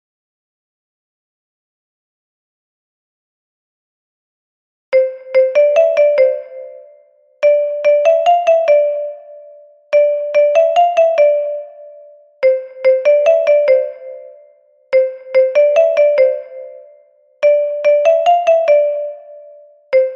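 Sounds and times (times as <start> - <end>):
soprano xylophone: 5.0 - 20.1.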